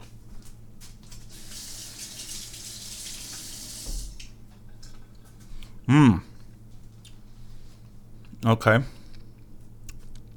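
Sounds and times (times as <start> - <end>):
tap water running at a sink while hands are washed: 1.1 - 4.3
speech: 5.9 - 6.2, 8.4 - 9.0.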